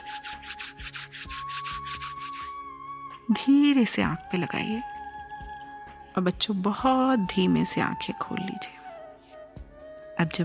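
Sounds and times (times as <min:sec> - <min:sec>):
two hands rubbing together with dry papery friction: 0:00.0 - 0:02.5
speech: 0:03.3 - 0:05.0, 0:06.2 - 0:08.8, 0:10.2 - 0:10.4.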